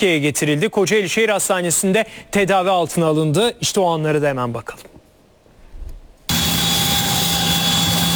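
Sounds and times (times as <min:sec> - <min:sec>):
speech: 0:00.0 - 0:05.0
ambulance aircraft engine roar: 0:06.3 - 0:08.1.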